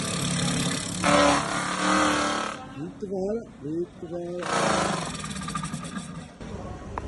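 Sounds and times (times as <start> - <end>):
milling machine grinding along the edge of an ice rink: 0.0 - 2.6, 4.4 - 6.4
speech: 2.8 - 5.4.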